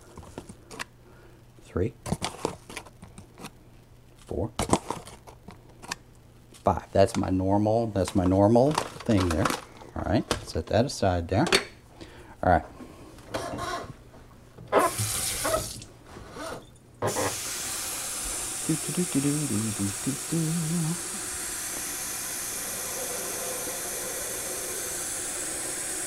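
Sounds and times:
speech: 1.7 - 2.2, 4.3 - 4.8, 6.6 - 11.7, 12.4 - 12.7, 18.7 - 21.2
tap water pouring into a coffee pot: 14.8 - 15.9, 17.1 - 26.0.

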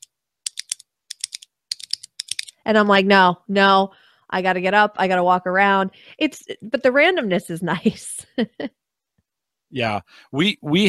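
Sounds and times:
typing on a computer keyboard: 0.0 - 2.5
speech: 2.6 - 8.8, 9.7 - 10.8.

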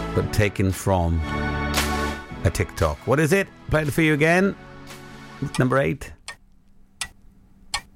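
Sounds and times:
speech: 0.1 - 1.5, 2.4 - 6.2
clock ticking: 5.4 - 7.9.

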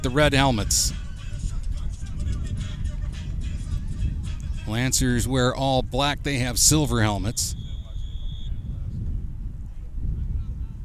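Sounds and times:
speech: 0.0 - 1.0, 4.7 - 7.6
wind buffeting microphone on top of a stadium press box at a football game: 0.0 - 10.8
faint high whistle: 7.2 - 8.9.

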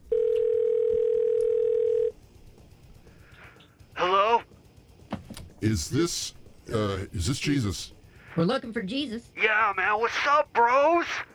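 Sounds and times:
telephone dial tone while placing a call: 0.0 - 2.2
speech: 5.6 - 11.3.

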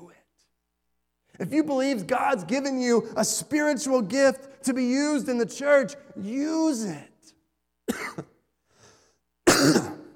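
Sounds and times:
speech: 1.4 - 7.1
preacher with a lingering cough coughing: 7.9 - 8.5, 9.4 - 10.1
throat clearing: 9.5 - 10.1.

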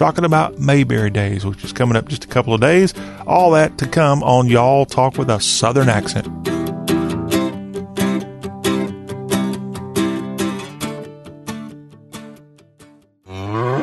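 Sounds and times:
speech: 0.0 - 6.6
rhythmic instrumental music: 0.0 - 12.6
cow mooing: 13.3 - 13.8.

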